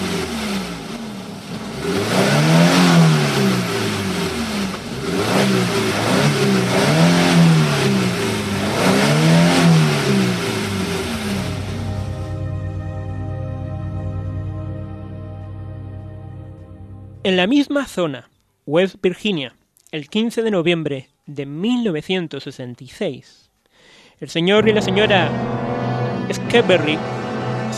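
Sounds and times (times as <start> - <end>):
car engine accelerating as the car drives away: 0.0 - 17.3, 24.6 - 27.7
speech: 17.3 - 23.4, 24.2 - 25.7, 26.3 - 27.7.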